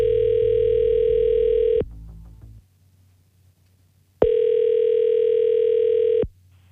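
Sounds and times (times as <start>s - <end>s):
outgoing telephone call ringback tones: 0.0s - 1.8s, 4.2s - 6.2s.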